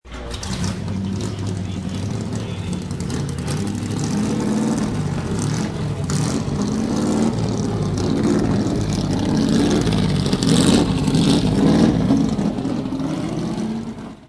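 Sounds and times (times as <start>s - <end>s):
Allard JR engine revving: 0.1s - 14.2s.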